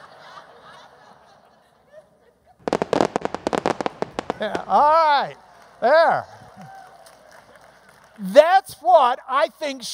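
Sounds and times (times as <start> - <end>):
laughter: 0.0 - 2.7
fireworks exploding in crackling pops: 2.6 - 5.7
fireworks hissing: 2.7 - 5.4
speech: 4.4 - 6.8, 8.2 - 9.9.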